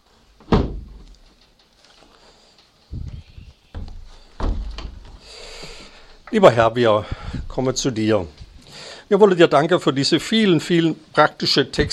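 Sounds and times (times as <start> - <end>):
windows being shut: 0.4 - 1.0, 3.7 - 5.2
wooden thud of windows being shut: 0.4 - 1.1, 3.7 - 5.2
dull thumps and knocks of windows being shut: 3.7 - 5.2
speech: 6.3 - 8.4, 9.1 - 11.9.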